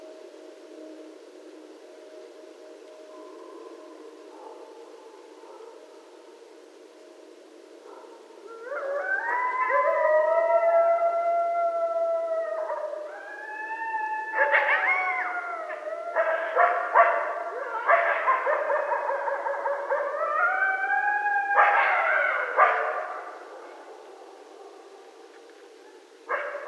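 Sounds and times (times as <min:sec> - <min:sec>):
several coyotes howling and yipping at night: 0:00.0 - 0:26.6.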